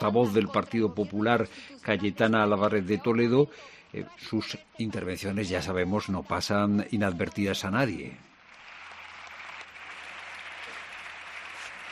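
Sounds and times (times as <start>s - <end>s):
speech: 0.0s - 8.3s
sustained applause from a large group in a big hall: 7.2s - 11.9s.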